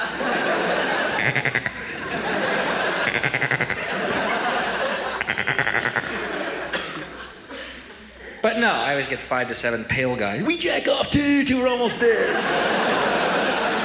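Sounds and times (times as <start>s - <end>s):
laughter: 0.0s - 8.1s, 11.9s - 13.8s
goat bleating: 1.2s - 2.0s, 3.0s - 3.8s, 5.2s - 6.1s
speech: 1.3s - 1.8s, 8.6s - 13.0s.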